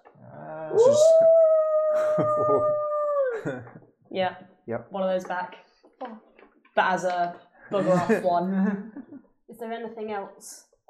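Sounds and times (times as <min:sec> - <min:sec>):
vocal sounds: 0:00.2 - 0:03.7
animal howling: 0:00.3 - 0:03.6
speech: 0:00.7 - 0:01.4, 0:02.2 - 0:06.2, 0:06.8 - 0:09.0, 0:09.6 - 0:10.8
laughter: 0:02.0 - 0:02.8, 0:03.4 - 0:03.8, 0:07.7 - 0:09.2.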